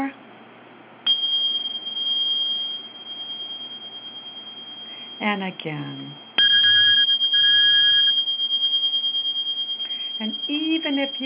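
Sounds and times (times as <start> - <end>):
Tibetan bells ringing: 1.1 - 5.2, 6.4 - 11.2
speech: 5.2 - 6.2, 10.2 - 11.2.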